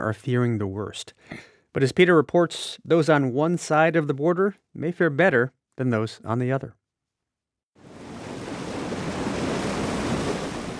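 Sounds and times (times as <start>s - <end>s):
speech: 0.0s - 6.8s
water rushing through irrigation canal: 7.8s - 10.7s.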